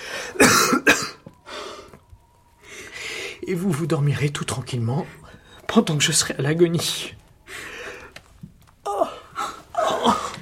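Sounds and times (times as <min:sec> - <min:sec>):
person acting out harsh choking coughs: 0:00.3 - 0:01.3
speech: 0:03.5 - 0:07.2.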